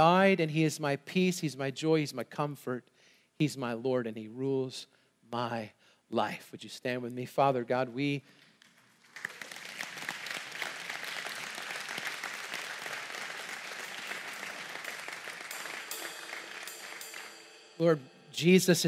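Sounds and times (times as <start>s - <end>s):
speech: 0.0s - 8.4s, 17.8s - 18.8s
church congregation clapping: 8.3s - 17.7s.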